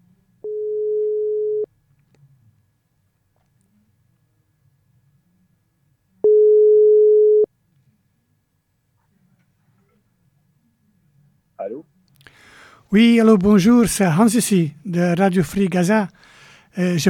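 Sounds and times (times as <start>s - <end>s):
telephone ringback tone while placing a call: 0.5s - 1.7s, 6.3s - 7.5s
speech: 12.9s - 17.0s.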